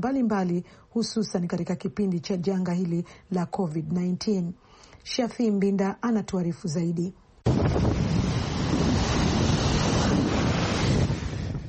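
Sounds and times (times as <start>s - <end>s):
speech: 0.0s - 8.6s
strong wind gusting on the Mediterranean shore at Alexandria: 7.4s - 11.6s
waves breaking on the Mediterranean shore at Alexandria: 7.5s - 11.6s.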